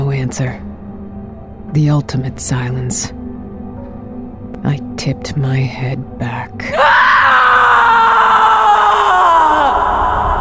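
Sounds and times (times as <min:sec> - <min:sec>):
speech: 0:00.2 - 0:00.7, 0:01.7 - 0:03.2, 0:04.6 - 0:07.1
long anguished human scream: 0:06.7 - 0:10.3.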